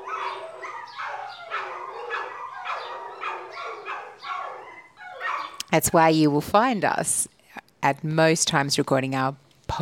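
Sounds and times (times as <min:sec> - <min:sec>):
several dogs barking and howling next door: 0:00.0 - 0:05.6
speech: 0:05.7 - 0:09.7.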